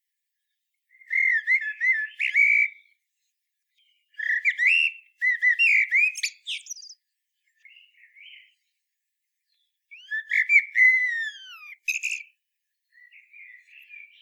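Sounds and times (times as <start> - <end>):
common blackbird song with fluted whistled phrases and squeaky twitters: 0.9 - 3.0, 3.8 - 7.0, 7.6 - 8.6, 9.5 - 14.2.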